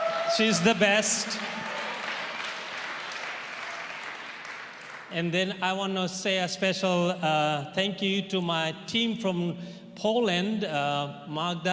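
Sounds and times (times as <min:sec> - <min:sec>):
audience at a church gathering clapping for the interpreter: 0:00.0 - 0:05.3
speech: 0:00.3 - 0:01.7, 0:05.1 - 0:11.7.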